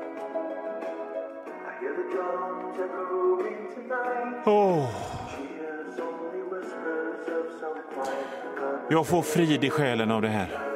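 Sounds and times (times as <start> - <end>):
soft sustained music with echo: 0.0 - 10.7
speech: 1.9 - 10.7.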